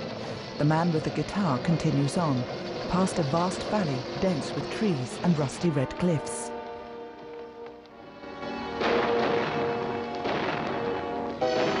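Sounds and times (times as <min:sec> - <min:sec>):
noisy wash: 0:00.0 - 0:11.7
speech: 0:00.6 - 0:06.4
distant gunshots during a stagecoach holdup: 0:08.7 - 0:11.7.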